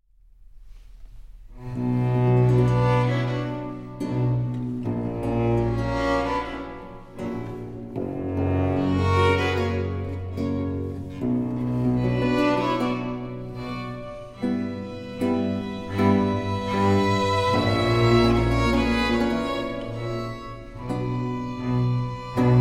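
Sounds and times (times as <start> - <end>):
cello concerto slow movement in C minor: 0.6 - 22.5.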